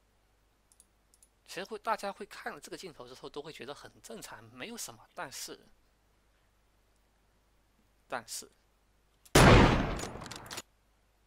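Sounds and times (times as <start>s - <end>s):
speech: 1.5s - 5.8s, 8.1s - 8.6s
video game gunshot: 9.4s - 10.5s.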